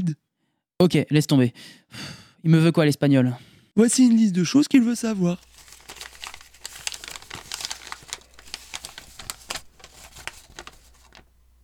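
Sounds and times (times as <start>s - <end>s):
speech: 0.0s - 0.2s, 0.8s - 5.5s
sheet of A4 paper handled and crinkled: 5.0s - 11.6s.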